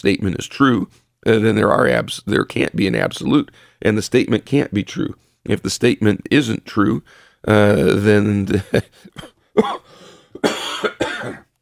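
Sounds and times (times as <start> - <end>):
speech: 0.0 - 11.4
person with a lingering cough coughing: 8.8 - 11.5.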